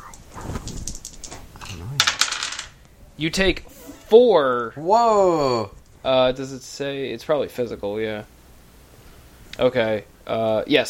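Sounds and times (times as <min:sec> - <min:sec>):
two dice clattering across a hard surface: 0:02.0 - 0:02.8
speech: 0:03.2 - 0:08.3, 0:09.6 - 0:10.8.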